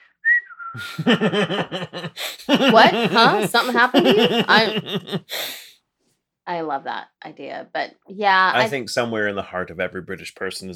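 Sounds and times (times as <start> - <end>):
person whistling innocently: 0.2 - 1.0
speech: 0.7 - 5.7, 6.5 - 10.7
laughter: 0.8 - 5.4.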